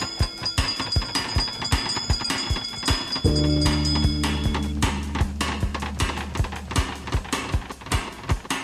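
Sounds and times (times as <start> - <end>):
bell ringing with quick steady strikes: 0.0 - 7.8
deep droning hum: 3.3 - 8.5.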